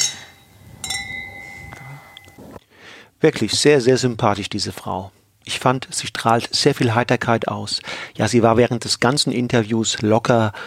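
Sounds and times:
wine glasses clinking in a toast: 0.0s - 2.6s
speech: 3.2s - 10.6s.

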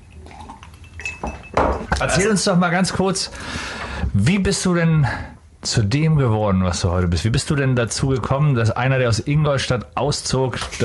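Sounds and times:
glasses clinking during a toast: 0.3s - 2.5s
speech: 2.0s - 10.8s.

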